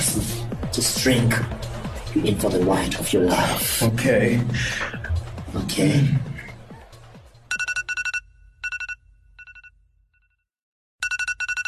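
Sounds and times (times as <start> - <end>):
speech: 0.2 - 6.3
laughter: 4.3 - 7.2
loud electronic alarm ringing in pulsing bursts of high tones: 7.5 - 9.8, 11.0 - 11.6.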